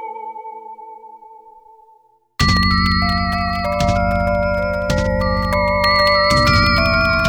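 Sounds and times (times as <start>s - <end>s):
Kawai K1 synthesizer decay effect: 2.4s - 7.2s.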